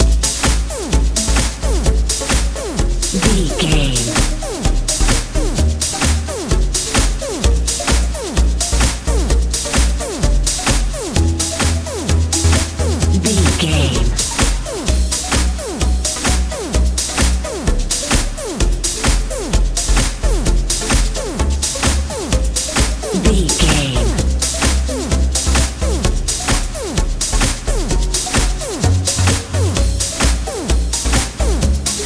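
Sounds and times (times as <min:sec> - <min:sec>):
colorful eurodance music with echo: 0:00.0 - 0:32.0.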